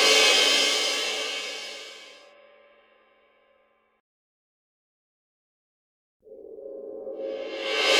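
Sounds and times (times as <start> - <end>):
cymbal roll: 0.0 - 2.9, 7.1 - 7.9.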